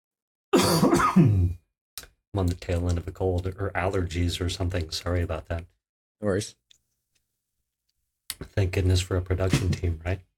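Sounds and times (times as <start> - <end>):
person coughing rough throaty bursts: 0.6 - 1.6
speech: 0.8 - 1.6, 2.4 - 6.7, 8.4 - 10.3.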